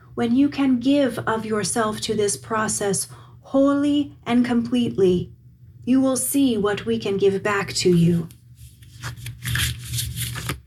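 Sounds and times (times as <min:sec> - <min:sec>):
speech: 0:00.2 - 0:08.4
oracle cards shuffling: 0:08.6 - 0:10.6.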